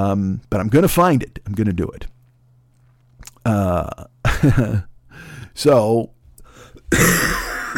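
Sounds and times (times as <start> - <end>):
speech: 0.0 - 2.1, 3.4 - 7.4
harsh dry rasping cough: 6.9 - 7.7.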